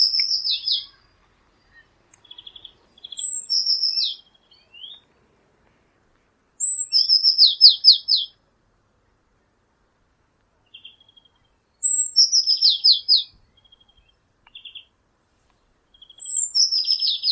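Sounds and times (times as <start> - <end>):
Eurasian blue tit sharp call and descending chatter: 0.0 - 5.1, 6.6 - 8.4, 10.6 - 17.3.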